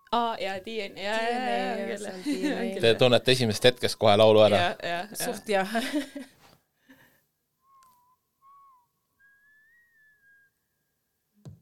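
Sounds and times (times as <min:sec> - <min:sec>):
speech: 0:00.1 - 0:06.3
whistled melody from a K-pop song: 0:07.6 - 0:11.3.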